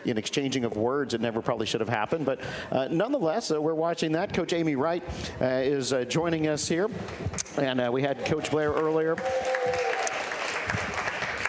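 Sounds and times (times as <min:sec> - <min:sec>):
speech: 0:00.0 - 0:09.9
audience applauding: 0:08.1 - 0:11.4.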